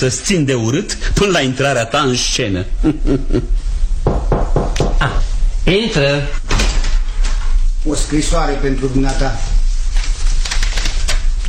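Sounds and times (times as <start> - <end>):
speech: 0.0 - 4.3, 5.0 - 6.5, 7.8 - 9.6
low constant hum: 0.0 - 11.4
laughter: 2.8 - 3.6
knocking on a door: 4.0 - 5.2.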